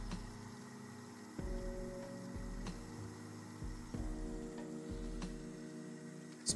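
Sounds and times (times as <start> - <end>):
ozone generator in water humming with pulsing click: 0.0 - 6.5.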